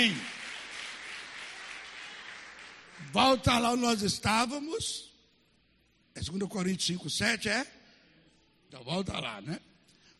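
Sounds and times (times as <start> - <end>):
speech: 0.0 - 0.3, 3.0 - 5.1, 6.2 - 7.8, 8.7 - 9.7
crowd applauding: 0.0 - 3.6.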